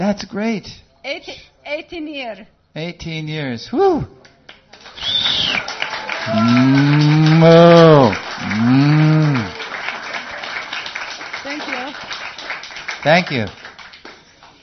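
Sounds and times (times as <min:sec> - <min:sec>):
speech: 0:00.1 - 0:04.2, 0:06.3 - 0:09.1, 0:13.0 - 0:13.6
dairy cows mooing in a barn: 0:06.2 - 0:09.6.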